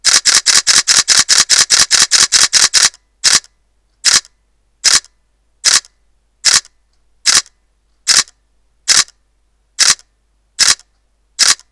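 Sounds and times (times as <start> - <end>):
DSLR camera continuous high-speed shutter burst: 0.0 - 5.9, 6.5 - 6.7, 7.3 - 7.5, 8.1 - 8.3, 8.9 - 9.1, 9.8 - 10.0, 10.6 - 11.7.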